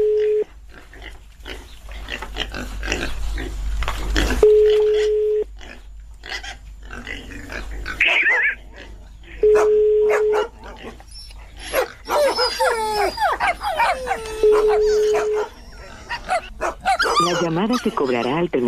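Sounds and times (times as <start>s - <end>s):
pigs squealing: 0.7s - 9.4s, 10.3s - 18.6s
dogs barking, yipping and whining: 7.6s - 18.6s.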